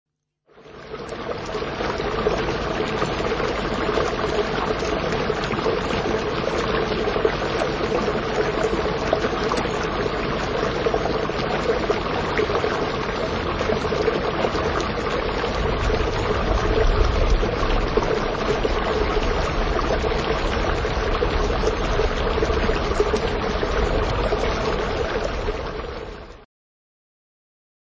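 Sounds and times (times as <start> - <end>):
stream of water: 0.5 - 26.4.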